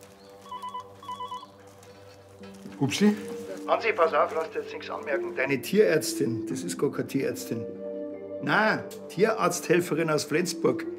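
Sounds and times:
telephone ringing in electronic trilling bursts: 0.5 - 1.6
speech: 2.5 - 7.8, 8.4 - 10.9.

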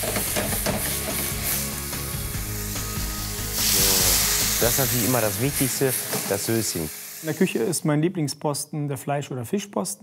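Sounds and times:
hot pan sizzling as white wine is added to deglaze it: 0.0 - 7.8
speech: 4.6 - 10.0.

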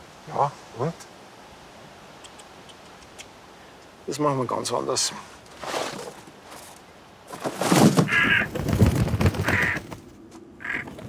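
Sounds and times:
speech: 0.3 - 1.2, 4.1 - 5.7
bird cawing: 8.0 - 8.6, 9.3 - 10.0, 10.6 - 11.0.

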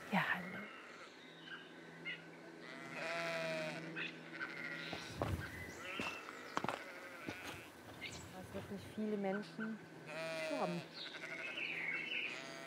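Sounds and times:
sheep bleating along a hiking trail: 0.2 - 1.2, 2.6 - 7.8, 10.0 - 12.6
speech: 9.0 - 9.9, 10.6 - 11.2.

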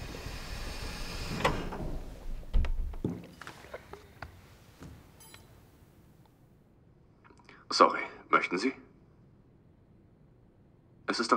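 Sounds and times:
door opening with a click and heavy thunk: 0.0 - 4.1
knocks and rattles of movement: 0.0 - 4.1
speech: 7.7 - 8.9, 11.1 - 11.3.

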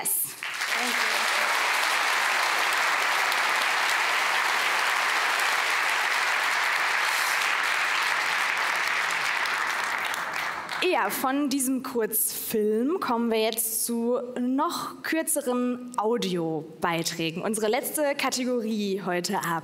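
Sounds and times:
sustained applause from a large audience: 0.4 - 10.9
speech: 10.9 - 19.6.

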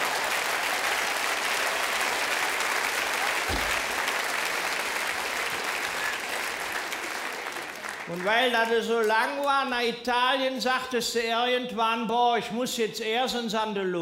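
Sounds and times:
audience applause: 0.0 - 9.2
low thump: 3.5 - 3.9
speech: 8.1 - 14.0.

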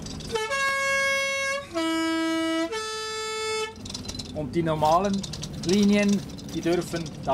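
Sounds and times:
three-tone post bus horn of a mountain post route: 0.3 - 3.8
speech: 4.4 - 7.3.

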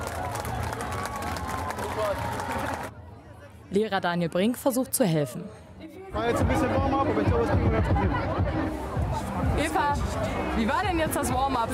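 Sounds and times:
large crowd applauding for children finishing a race: 0.0 - 2.9
cheering and excited voices: 0.0 - 3.0, 5.1 - 11.7
speech: 2.0 - 2.6, 3.7 - 11.7.

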